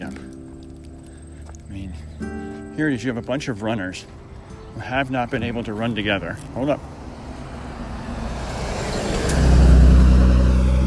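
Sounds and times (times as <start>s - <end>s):
speech: 1.9s - 4.2s, 4.8s - 6.9s
UPS delivery truck engine driving past: 6.0s - 10.8s.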